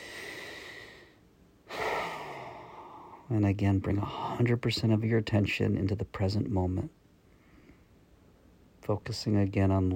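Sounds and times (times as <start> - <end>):
long deep breath: 0.0 - 3.3
speech: 3.3 - 7.0, 8.9 - 9.9.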